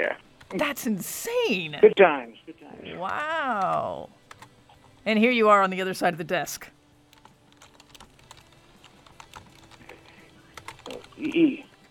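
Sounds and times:
speech: 0:00.0 - 0:04.2, 0:05.0 - 0:06.7, 0:11.2 - 0:11.6
child typing on a computer keyboard: 0:03.6 - 0:04.5, 0:07.1 - 0:11.9.

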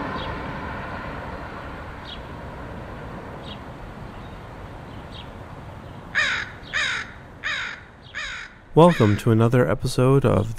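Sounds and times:
crows cawing in Portland Oregon: 0:06.1 - 0:09.3
speech: 0:08.8 - 0:10.5.

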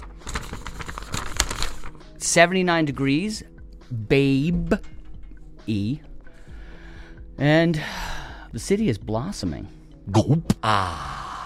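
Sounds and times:
paper rustling as a piece of paper is handled: 0:00.0 - 0:02.0
speech: 0:02.2 - 0:04.9, 0:05.6 - 0:06.1, 0:07.4 - 0:11.1.

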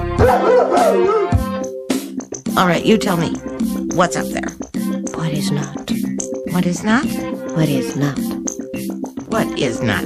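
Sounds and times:
speech: 0:00.2 - 0:01.2, 0:02.6 - 0:06.0, 0:06.5 - 0:08.4, 0:09.3 - 0:10.0
person imitating dog woofs: 0:00.2 - 0:01.4.

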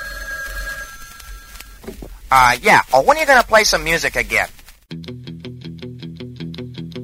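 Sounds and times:
telephone ringing with a bright electronic tone: 0:00.0 - 0:01.9
speech: 0:02.3 - 0:04.6.

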